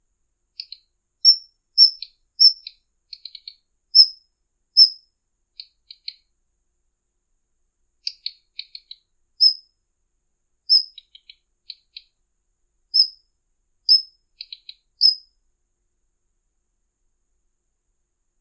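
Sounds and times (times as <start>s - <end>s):
Daurian redstart singing: 0.6s - 4.2s, 8.0s - 9.6s, 10.7s - 12.1s, 13.0s - 13.2s, 13.9s - 15.3s.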